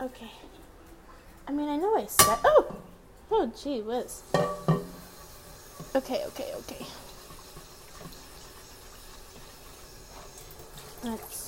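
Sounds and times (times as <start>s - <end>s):
speech: 0.0s - 0.6s, 1.5s - 4.7s, 5.9s - 7.0s, 11.0s - 11.4s
water hissing and sizzling on a very hot pan while doing dishes: 4.0s - 11.4s.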